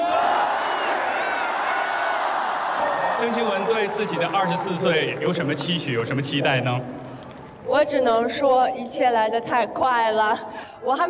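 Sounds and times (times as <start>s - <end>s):
large stadium crowd cheering and calling out birthday wishes: 0.0s - 6.4s
speech: 3.2s - 7.0s, 7.7s - 11.0s.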